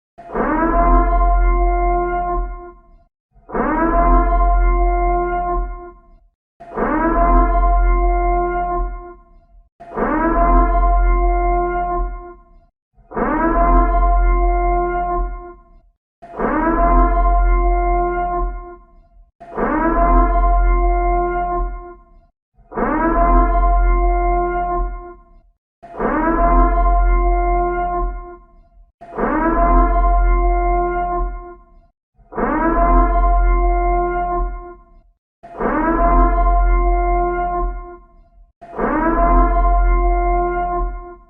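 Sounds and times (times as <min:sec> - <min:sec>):
siren: 0:00.2 - 0:41.2.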